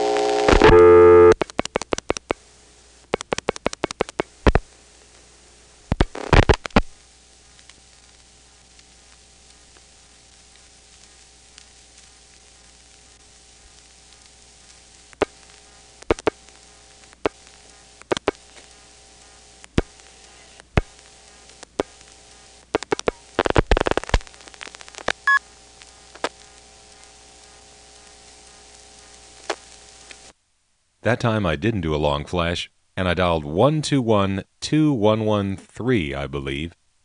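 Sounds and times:
telephone trunk line's reorder tone from Dale City: 0.0s - 1.4s, 25.2s - 25.4s
steady static: 0.0s - 37.0s
speech: 0.7s - 0.9s, 31.0s - 36.8s.

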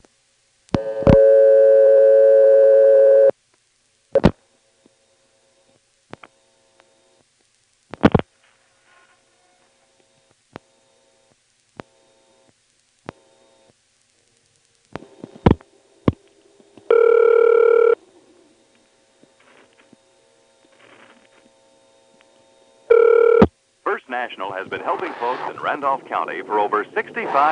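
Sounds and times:
coin payphone line tone bursts: 0.8s - 3.3s, 16.9s - 18.0s, 22.9s - 23.5s
faint phone line noise: 20.8s - 27.5s
speech: 23.9s - 27.5s.

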